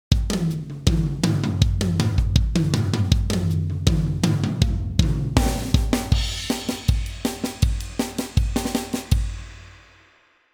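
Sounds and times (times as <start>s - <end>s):
drum sample: 1.0s - 9.1s.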